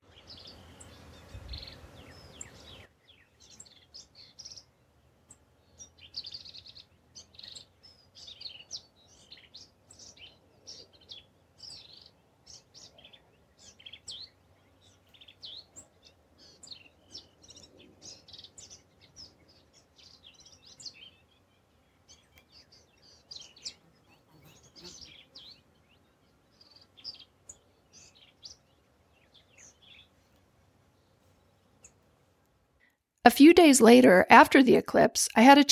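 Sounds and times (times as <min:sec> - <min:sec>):
male black-capped vireo twittering song: 0:00.0 - 0:32.1
speech: 0:33.3 - 0:35.7.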